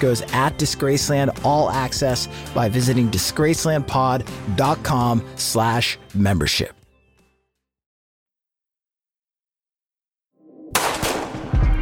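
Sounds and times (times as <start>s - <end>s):
speech: 0.0s - 6.8s
rapid burst of gunfire: 10.8s - 11.6s.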